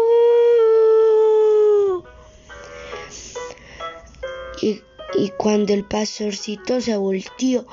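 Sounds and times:
wavering voice-like tones: 0:00.0 - 0:02.1
wolf howling: 0:00.0 - 0:02.1
speech: 0:04.6 - 0:07.7.

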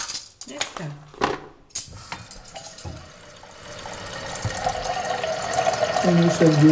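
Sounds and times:
speech: 0:00.5 - 0:01.1, 0:06.1 - 0:06.7
tap water running into a small Italian moka pot: 0:02.0 - 0:06.7.

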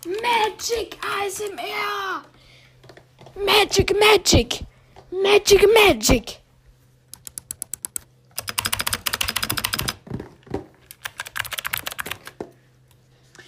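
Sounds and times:
speech: 0:00.6 - 0:02.3, 0:03.4 - 0:06.4
crisp typing on a computer keyboard: 0:07.1 - 0:10.0, 0:10.9 - 0:12.4.

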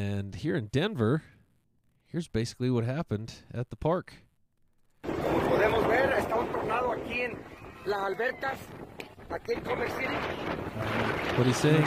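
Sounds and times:
speech: 0:00.0 - 0:01.4, 0:02.1 - 0:04.2, 0:05.3 - 0:11.8
people talking and calling out at a park: 0:05.0 - 0:11.8
strong gusting wind from a windstorm at a park in Denver: 0:05.0 - 0:11.8.

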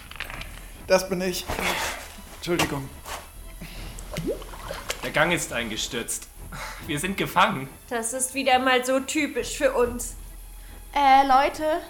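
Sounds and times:
speech: 0:00.9 - 0:03.0, 0:05.0 - 0:10.2, 0:10.9 - 0:11.8
water gushing and splashing from a burst pipe: 0:03.9 - 0:05.5.

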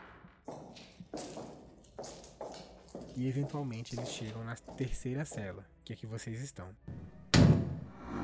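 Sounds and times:
speech: 0:03.2 - 0:07.0
doors slamming open violently in a reverberant space: 0:06.9 - 0:07.9.

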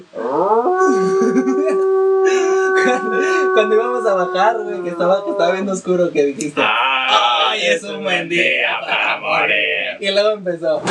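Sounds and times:
person imitating a wolf howl: 0:00.1 - 0:05.8, 0:06.6 - 0:07.7
laughter: 0:00.8 - 0:04.6, 0:06.6 - 0:09.7
speech: 0:03.6 - 0:10.8.

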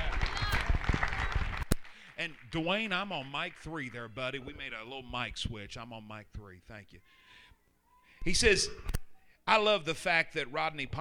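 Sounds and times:
church audience clapping at a morning service: 0:00.0 - 0:04.3
church audience cheering and shouting: 0:00.0 - 0:04.9
speech: 0:02.2 - 0:07.2, 0:08.2 - 0:11.0.

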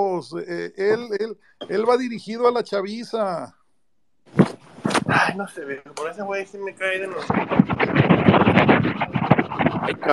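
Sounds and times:
speech: 0:00.2 - 0:03.6, 0:04.4 - 0:08.2, 0:09.8 - 0:10.1
rubbing and scratching against a microphone while cleaning a cellphone: 0:04.3 - 0:10.1.

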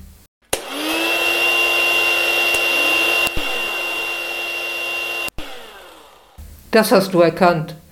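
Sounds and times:
hair dryer blowing: 0:00.5 - 0:06.7
speech: 0:06.8 - 0:07.8.

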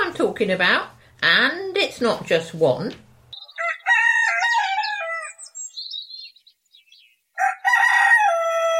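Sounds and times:
speech: 0:00.2 - 0:03.0
rooster crowing: 0:03.4 - 0:05.5, 0:07.4 - 0:08.7.

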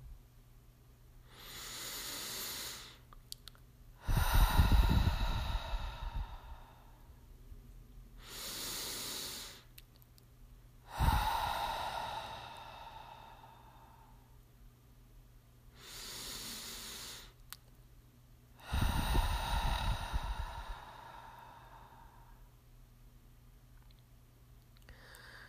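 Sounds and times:
breathing in through nose and out through mouth: 0:01.2 - 0:03.1, 0:04.0 - 0:07.2, 0:08.2 - 0:09.7, 0:10.8 - 0:14.4, 0:15.7 - 0:17.4, 0:18.6 - 0:22.5, 0:24.8 - 0:25.4.

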